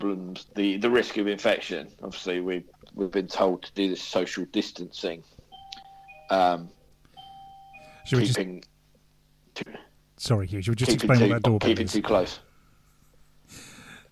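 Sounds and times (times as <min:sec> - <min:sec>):
speech: 0:00.0 - 0:05.4, 0:06.3 - 0:06.8, 0:08.0 - 0:08.7, 0:09.6 - 0:12.5
shop doorbell chiming: 0:05.5 - 0:08.4
steady faint electronic tones: 0:05.5 - 0:08.6.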